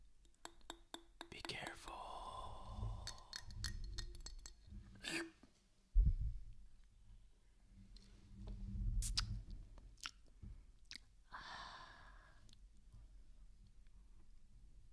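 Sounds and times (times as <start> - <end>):
soft mouth noises: 1.2 - 5.4, 8.0 - 11.4
glass beer bottle clicking and tapping against teeth for ASMR: 3.0 - 4.7.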